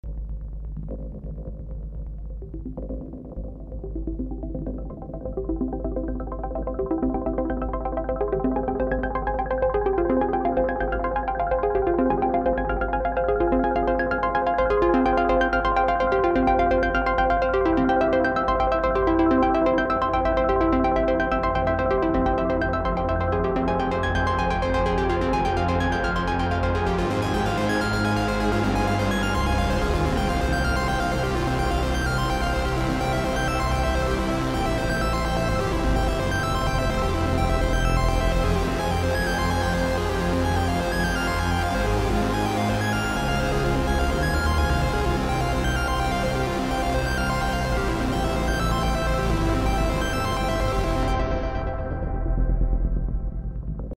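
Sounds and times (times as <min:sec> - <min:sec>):
synthesiser: 0:00.1 - 0:53.9.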